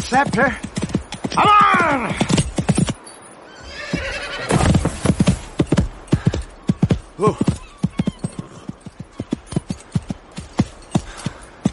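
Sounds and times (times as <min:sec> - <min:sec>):
speech: 0:00.0 - 0:00.7, 0:01.3 - 0:02.3, 0:07.2 - 0:07.5
hooves of a ridden horse clopping and galloping: 0:00.0 - 0:11.7
horse whinnying: 0:03.5 - 0:04.9, 0:07.2 - 0:09.5.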